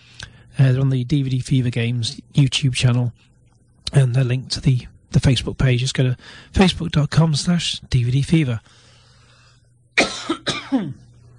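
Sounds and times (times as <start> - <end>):
faint low hum: 0.0 - 11.3
speech: 0.6 - 3.3, 3.9 - 8.9
harsh coughs: 10.0 - 11.1.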